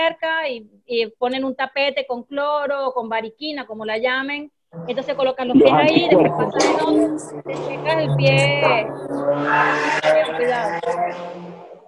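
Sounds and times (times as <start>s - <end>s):
speech: 0.0s - 11.5s
laughter: 5.5s - 7.1s
motorcycle passing outside: 6.0s - 11.8s.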